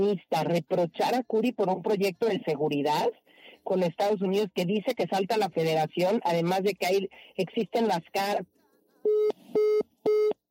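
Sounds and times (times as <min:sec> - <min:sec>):
speech: 0:00.0 - 0:10.3
faint noise: 0:00.0 - 0:10.5
telephone busy tone after a dropped call: 0:09.0 - 0:10.5.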